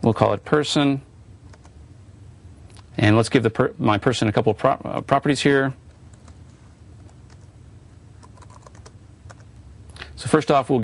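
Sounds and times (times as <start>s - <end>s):
speech: 0.0s - 1.1s, 3.0s - 5.8s, 10.3s - 10.8s
steady low hum: 0.0s - 10.8s
typing code on a computer keyboard: 1.5s - 1.7s, 8.2s - 9.5s.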